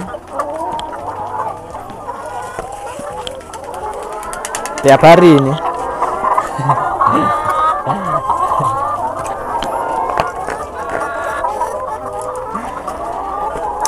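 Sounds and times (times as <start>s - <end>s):
chickens clucking and squawking in a coop: 0.0s - 13.8s
speech: 4.8s - 5.7s, 6.6s - 8.7s
person talking and laughing: 6.6s - 8.9s.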